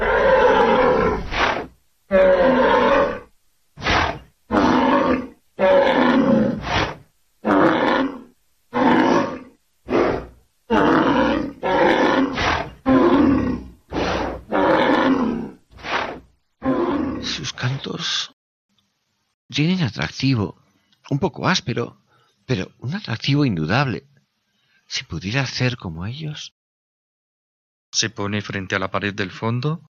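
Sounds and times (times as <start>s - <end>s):
rhinoceros bellowing with rough roars and strained cries: 0.0s - 17.4s
speech: 19.9s - 24.1s, 24.9s - 26.6s, 27.9s - 29.9s.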